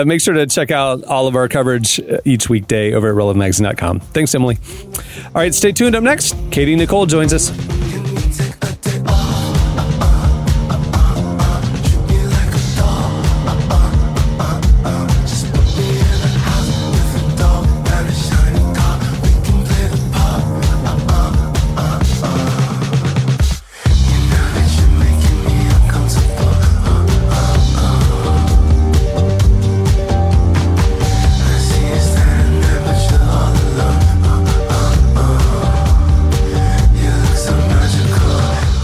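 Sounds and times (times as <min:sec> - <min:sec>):
speech: 0:00.0 - 0:07.9
loud dense song with full instrumentation and driving low end: 0:04.0 - 0:38.8.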